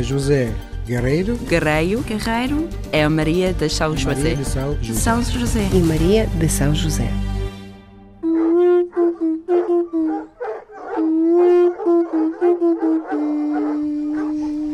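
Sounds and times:
speech: 0:00.0 - 0:07.3
steady horn-like drone of a conch shell being blown: 0:07.1 - 0:10.2, 0:11.2 - 0:14.7
several dogs barking and howling in an overlapping chorus: 0:08.2 - 0:14.7.

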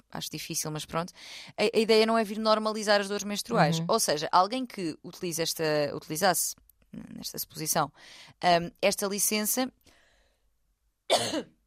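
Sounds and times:
speech: 0:00.1 - 0:09.9, 0:11.1 - 0:11.6
person coughing: 0:11.1 - 0:11.6.

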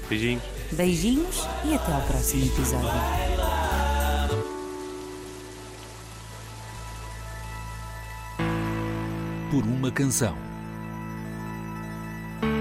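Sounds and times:
sustained musical tones: 0:00.0 - 0:12.5
speech: 0:00.1 - 0:03.3, 0:09.6 - 0:10.5
steady rain falling: 0:01.6 - 0:10.5.

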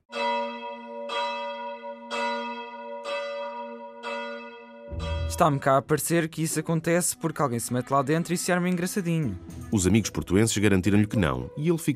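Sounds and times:
church bell of the Torre dos Clérigos tolling at midnight: 0:00.1 - 0:05.9
speech: 0:05.3 - 0:11.9.

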